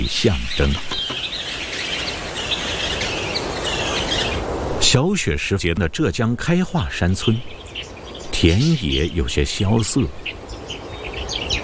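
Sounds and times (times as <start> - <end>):
speech: 0.0 - 1.0, 4.9 - 7.6, 8.4 - 10.4
birds chirping and tweeting: 0.0 - 11.6.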